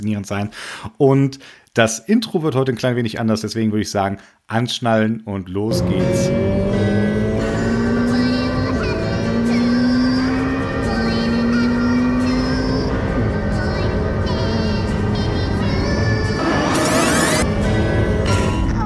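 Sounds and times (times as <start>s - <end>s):
speech: 0.0s - 6.9s
Ferrari V8 sports car engine revving hard: 5.7s - 18.7s.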